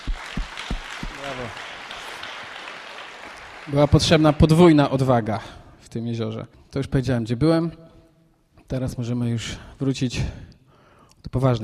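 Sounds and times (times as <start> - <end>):
audience applauding: 0.0 - 5.3
speech: 1.2 - 1.7, 3.7 - 7.8, 8.7 - 10.5, 11.2 - 11.6.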